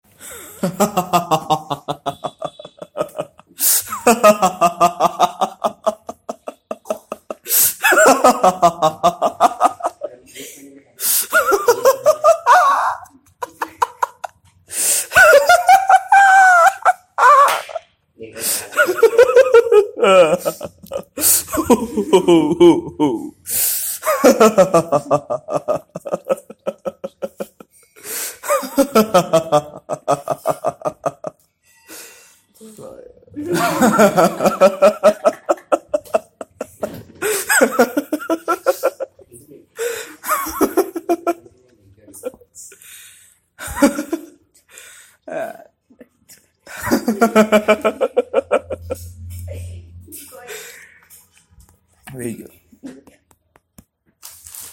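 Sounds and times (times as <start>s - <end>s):
workers laughing: 0.6s - 10.3s, 11.1s - 23.4s, 24.0s - 31.5s, 33.4s - 42.4s, 43.6s - 44.5s, 45.3s - 49.4s.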